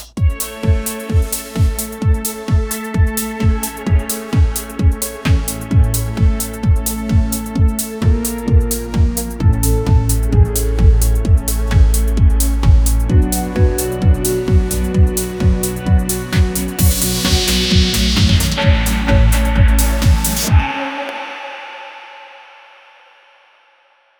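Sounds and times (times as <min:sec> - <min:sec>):
electronic music intro build-up: 0:00.2 - 0:21.2.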